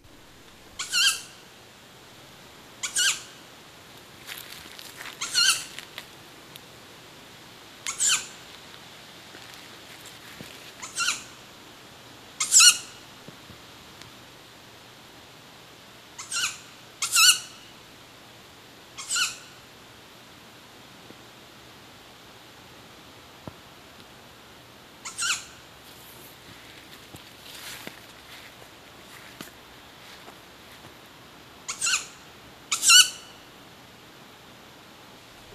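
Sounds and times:
owl chick begging calls: 0:00.7 - 0:01.4, 0:02.8 - 0:03.4, 0:05.2 - 0:05.7, 0:07.9 - 0:08.4, 0:10.8 - 0:11.4, 0:12.4 - 0:13.0, 0:16.2 - 0:17.6, 0:19.0 - 0:19.6, 0:25.0 - 0:25.6, 0:31.7 - 0:33.4.

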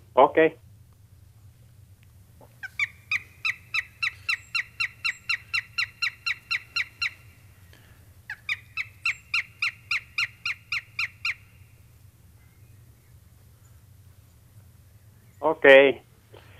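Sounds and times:
low steady hum: 0:00.0 - 0:16.5
speech: 0:00.2 - 0:00.6, 0:15.6 - 0:16.0
northern goshawk harsh rapid cackling calls: 0:02.4 - 0:12.6.

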